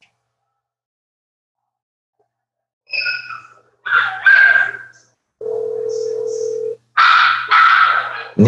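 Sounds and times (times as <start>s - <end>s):
dogs barking in a house: 3.2s - 5.0s, 6.9s - 8.4s.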